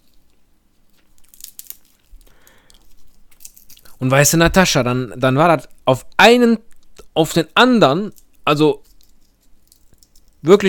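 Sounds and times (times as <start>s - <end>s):
peanuts in their shells being chewed: 0.0s - 4.3s, 8.1s - 10.5s
speech: 4.0s - 8.9s, 10.4s - 10.6s.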